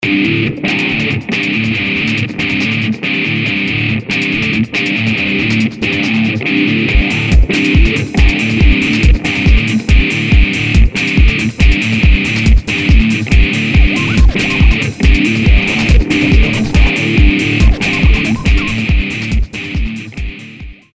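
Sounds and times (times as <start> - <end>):
guitar: 0.0 - 20.9
kick drum: 6.9 - 20.8.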